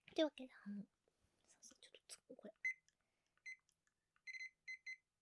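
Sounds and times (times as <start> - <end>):
speech: 0.2 - 1.0
kitchen timer beeping while being set: 4.3 - 5.0.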